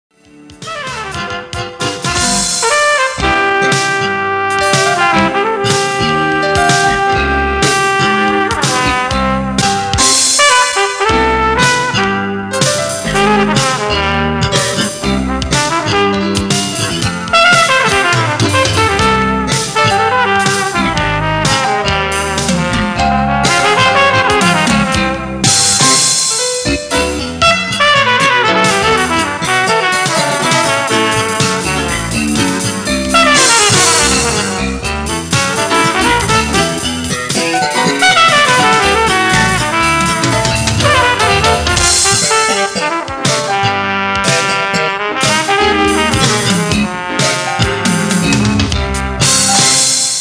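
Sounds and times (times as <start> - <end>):
flugelhorn: 0.6 - 16.6, 17.3 - 26.4, 27.4 - 50.0.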